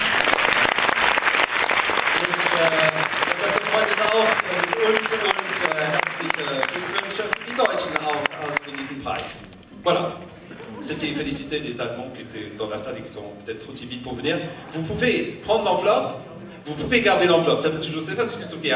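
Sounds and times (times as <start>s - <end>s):
room full of people applauding: 0.0s - 9.4s
murmur of voices: 2.2s - 18.7s
speech: 9.0s - 10.2s, 10.9s - 18.7s.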